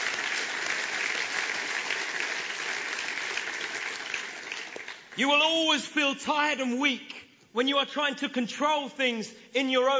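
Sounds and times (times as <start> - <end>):
church audience applauding: 0.0 - 5.2
speech: 5.2 - 9.9.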